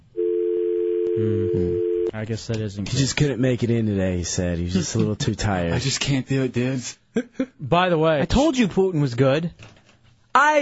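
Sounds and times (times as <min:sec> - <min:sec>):
telephone dial tone: 0:00.2 - 0:02.1
speech: 0:01.2 - 0:09.8, 0:10.4 - 0:10.6.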